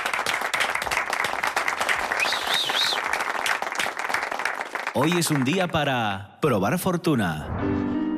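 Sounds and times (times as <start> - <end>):
sizable crowd applauding: 0.0 - 6.0
whistle or cheer: 2.1 - 3.1
speech: 5.0 - 8.0.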